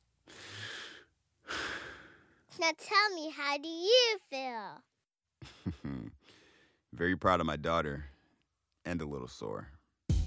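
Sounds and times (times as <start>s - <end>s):
man taking a deep breath after a fall: 0.3s - 2.4s, 6.2s - 6.8s
speech: 2.6s - 4.9s, 7.0s - 8.1s, 8.8s - 9.8s.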